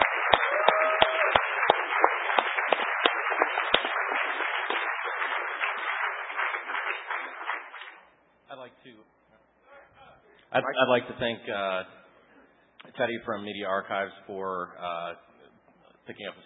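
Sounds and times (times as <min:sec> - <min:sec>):
audience round of applause: 0:00.0 - 0:08.1
speech: 0:10.6 - 0:12.0, 0:13.0 - 0:15.3, 0:16.1 - 0:16.4.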